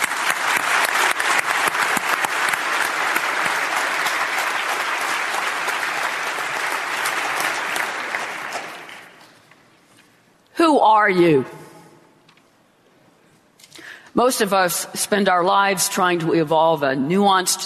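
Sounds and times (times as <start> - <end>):
large audience applause: 0.0 - 9.4
speech: 11.1 - 11.6, 14.2 - 17.6.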